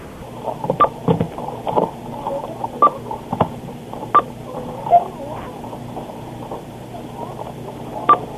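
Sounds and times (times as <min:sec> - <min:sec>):
faint clatter: 0:00.0 - 0:08.3
faint murmur: 0:01.4 - 0:08.3
electronic cash register beeps heard through a telephone line: 0:04.1 - 0:04.3.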